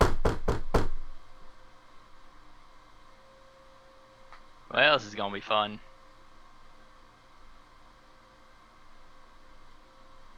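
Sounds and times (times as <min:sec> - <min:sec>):
hard, firm knocks on a door: 0:00.0 - 0:01.2
speech: 0:04.8 - 0:05.9.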